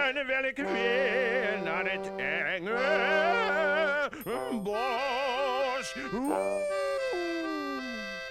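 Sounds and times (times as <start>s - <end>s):
speech: 0.2s - 5.2s
cartoonish wolf howl voiced by a person: 6.2s - 8.2s.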